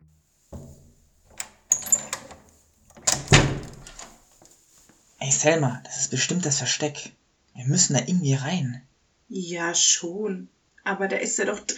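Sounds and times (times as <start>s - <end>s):
hidden lever mechanical clunks and metallic clicks: 0.6s - 4.2s
heavy railway wagon door sliding and thudding open: 0.6s - 4.3s
speech: 5.3s - 11.7s.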